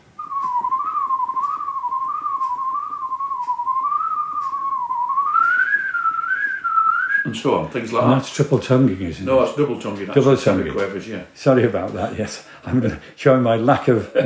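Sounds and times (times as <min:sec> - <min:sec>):
person whistling a fast tune: 0:00.2 - 0:07.4
speech: 0:07.3 - 0:14.2.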